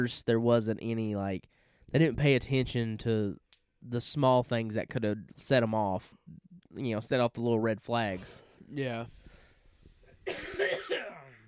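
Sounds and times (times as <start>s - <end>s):
speech: 0.0s - 9.2s, 10.3s - 10.6s
harsh raspy coughs: 10.1s - 11.4s.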